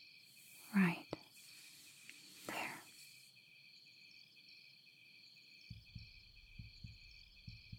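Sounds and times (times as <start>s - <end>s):
faint high-pitched whine: 0.0s - 7.7s
heartbeat thudding in low lub-dub pairs: 5.7s - 7.7s.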